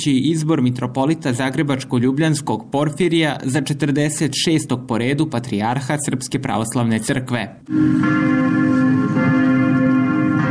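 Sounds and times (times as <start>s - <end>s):
speech: 0.0s - 9.4s
church bells of an Orthodox temple in Belgrade pealing: 7.7s - 10.4s.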